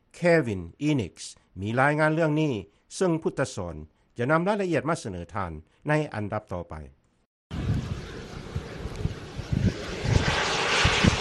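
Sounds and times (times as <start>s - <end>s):
speech: 0.2s - 7.0s
experimental unmanned aircraft with no moving parts flying: 7.5s - 11.2s.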